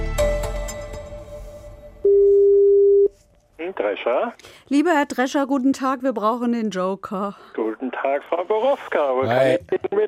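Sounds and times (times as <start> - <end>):
loud steady telephone ringing tone: 2.0 - 3.1
speech: 3.8 - 10.0.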